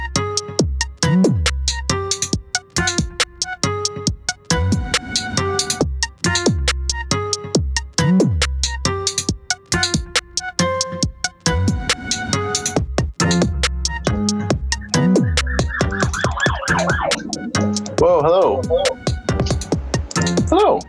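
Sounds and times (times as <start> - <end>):
loud steady thumping music beat: 0.0 - 20.8
emergency vehicle siren passing by a house: 14.8 - 17.6.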